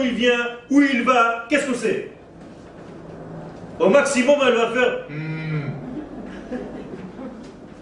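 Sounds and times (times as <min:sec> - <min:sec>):
speech: 0:00.0 - 0:02.2, 0:03.8 - 0:05.7
man's voice imitating a cow mooing: 0:05.1 - 0:05.8
murmured vocal sounds: 0:05.1 - 0:06.0
laughter: 0:05.7 - 0:07.7.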